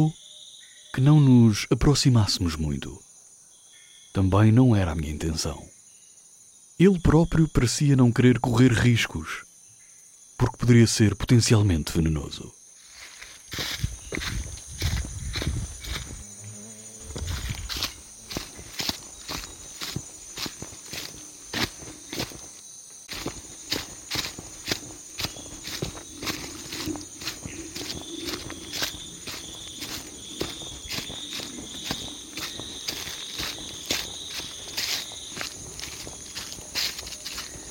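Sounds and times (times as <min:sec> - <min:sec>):
speech: 0:00.0 - 0:00.2, 0:00.9 - 0:03.0, 0:04.2 - 0:05.7, 0:06.8 - 0:09.5, 0:10.4 - 0:12.6, 0:13.5 - 0:14.4
chorus of insects and crickets in the jungle at night: 0:00.0 - 0:37.6
footsteps walking through the jungle at night: 0:12.8 - 0:37.6.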